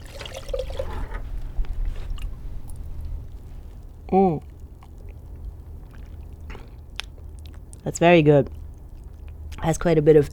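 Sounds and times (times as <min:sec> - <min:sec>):
coffee poured into a cup for a tasting: 0:00.0 - 0:01.3
low hum: 0:00.0 - 0:10.3
speech: 0:04.1 - 0:04.4, 0:07.9 - 0:08.6, 0:09.6 - 0:10.3.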